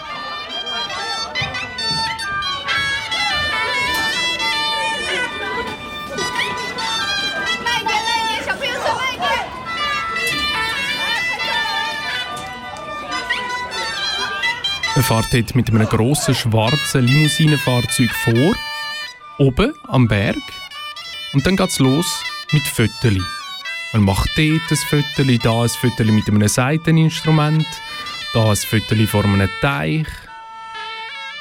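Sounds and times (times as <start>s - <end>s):
brighter shouts and higher voices rising above the din: 0.0s - 17.8s
dense busy crowd chattering at a wedding venue in Longjing China: 0.0s - 31.4s
speech: 15.1s - 18.7s, 19.4s - 20.6s, 21.3s - 30.3s.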